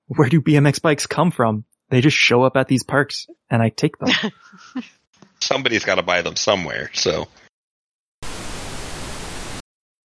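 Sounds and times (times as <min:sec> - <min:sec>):
speech: 0:00.1 - 0:07.4
laughter: 0:04.0 - 0:04.9
humming static noise from a freezer: 0:08.2 - 0:09.6.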